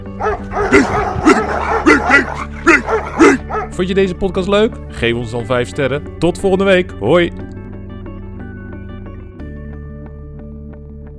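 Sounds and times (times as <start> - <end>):
angry dogs barking: 0.0 - 4.2
speech: 3.8 - 7.5.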